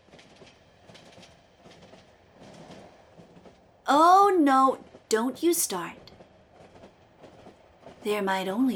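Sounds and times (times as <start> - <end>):
train wheels clickety-clack over rail joints: 0.0 - 3.6, 6.0 - 8.2
train rolling on rails: 0.0 - 8.7
speech: 3.9 - 6.0, 8.0 - 8.7.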